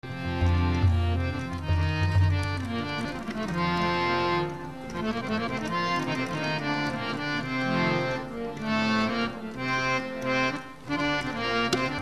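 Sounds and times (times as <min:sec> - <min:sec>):
harmonium: 0:00.0 - 0:11.9.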